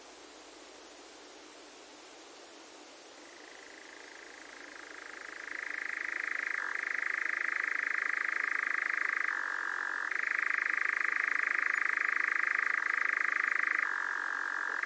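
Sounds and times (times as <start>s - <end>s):
nightjar giving a long even churr: 3.2s - 14.8s.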